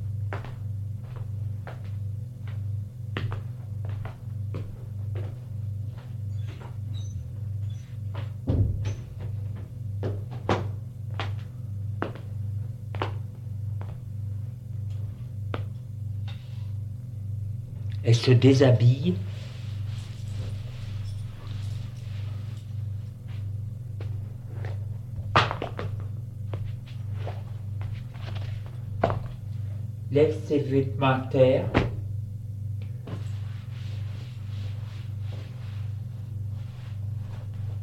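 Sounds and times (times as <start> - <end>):
footsteps walking indoors at an even pace: 0.0 - 18.1, 18.9 - 30.0, 31.8 - 37.8
constant low mechanical hum: 0.0 - 37.8
apartment door opening with a dull thunk: 8.4 - 9.2
speech: 18.1 - 19.3, 30.7 - 31.8.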